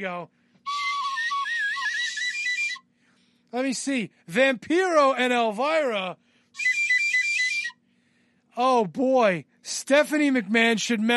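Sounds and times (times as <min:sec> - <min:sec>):
speech: 0:00.0 - 0:00.4, 0:03.5 - 0:06.7, 0:08.6 - 0:11.1
whistle blast: 0:00.7 - 0:02.8, 0:06.6 - 0:07.8.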